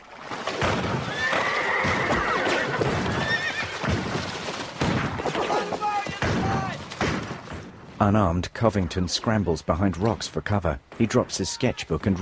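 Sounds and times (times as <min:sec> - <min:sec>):
hooves clattering: 0:00.0 - 0:12.2
thuds: 0:00.4 - 0:01.1, 0:03.8 - 0:07.9
horses whinnying: 0:00.5 - 0:06.8
speech: 0:08.0 - 0:12.2.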